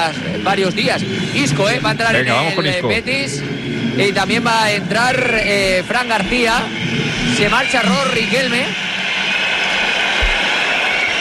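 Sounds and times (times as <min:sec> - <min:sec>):
speech: 0:00.0 - 0:08.9
stadium crowd whistling at a football match: 0:05.1 - 0:11.2
stadium crowd applauding at a football match: 0:07.3 - 0:11.2.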